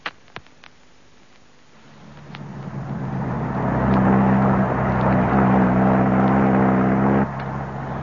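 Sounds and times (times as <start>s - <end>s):
car engine starting up and pulling away: 1.9s - 8.0s.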